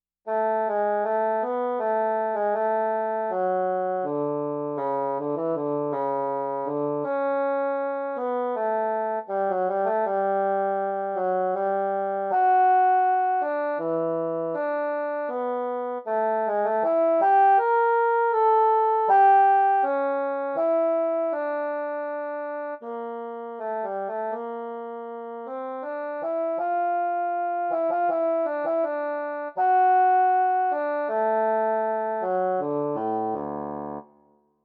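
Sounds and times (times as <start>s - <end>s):
lyrical bassoon: 0.3s - 34.0s.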